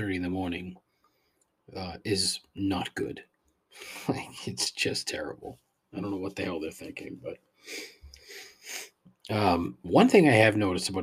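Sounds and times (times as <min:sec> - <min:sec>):
speech: 0:00.0 - 0:00.9, 0:01.7 - 0:11.0
person sniffling into a microphone through a stuffy nose: 0:03.8 - 0:04.2, 0:07.6 - 0:09.0.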